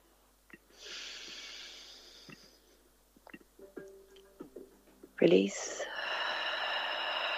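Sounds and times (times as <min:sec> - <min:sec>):
deep inhale during guided breathing: 0:00.7 - 0:02.8, 0:05.6 - 0:07.3
speech: 0:05.2 - 0:05.8.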